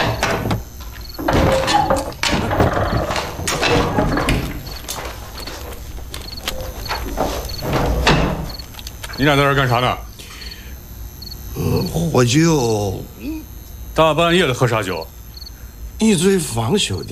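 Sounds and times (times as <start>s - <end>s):
door latch rattling as door is opened: 0.0s - 9.2s
wooden knocks and clatters of a door being opened: 0.0s - 9.2s
speech: 9.2s - 10.1s, 11.6s - 15.2s, 16.0s - 17.1s.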